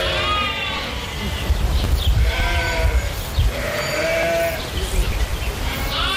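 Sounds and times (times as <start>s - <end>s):
lambs bleating: 0.0s - 1.4s, 2.2s - 4.7s, 5.6s - 6.1s.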